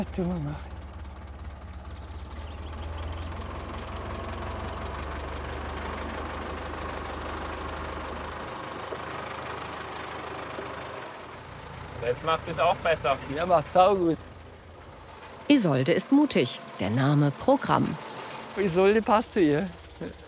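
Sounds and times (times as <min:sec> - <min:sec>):
speech: 0:00.0 - 0:00.8, 0:12.0 - 0:14.3, 0:15.5 - 0:18.0, 0:18.6 - 0:20.2
tractor engine starting and running: 0:00.0 - 0:20.2.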